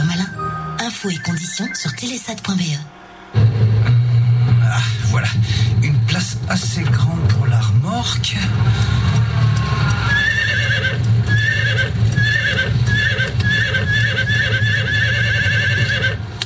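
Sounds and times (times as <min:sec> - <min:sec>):
speech: 0:01.0 - 0:03.6, 0:05.1 - 0:09.6
steady low rumble: 0:02.5 - 0:13.4
horse hooves clip-clopping: 0:09.0 - 0:16.4
horses neighing: 0:09.6 - 0:16.2.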